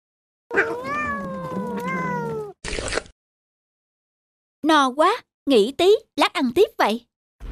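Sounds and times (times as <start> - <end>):
cat meowing: 0.5 - 2.6
speech: 4.6 - 7.1.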